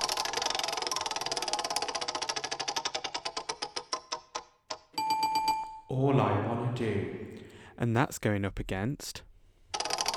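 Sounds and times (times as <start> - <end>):
spinning track-picker wheel ticking: 0.0 - 5.7, 9.7 - 10.1
speech: 5.9 - 9.3.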